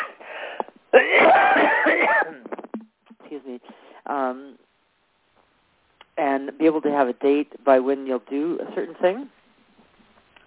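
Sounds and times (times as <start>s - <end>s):
person in a coughing fit with harsh raspy hacking coughs: 1.0s - 2.7s
speech: 3.6s - 4.6s, 6.4s - 9.4s.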